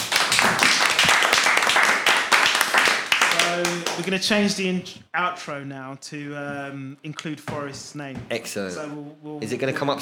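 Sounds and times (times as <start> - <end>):
crowd applauding: 0.0 - 4.2
speech: 4.0 - 9.9.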